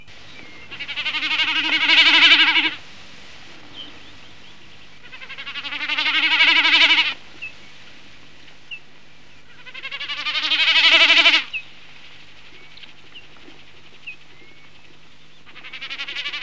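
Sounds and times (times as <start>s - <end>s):
snipe: 0.1s - 11.5s.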